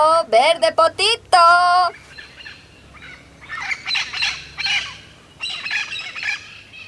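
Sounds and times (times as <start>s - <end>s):
speech: 0.0s - 2.0s
flock of green parrots squawking while passing by: 1.9s - 6.8s.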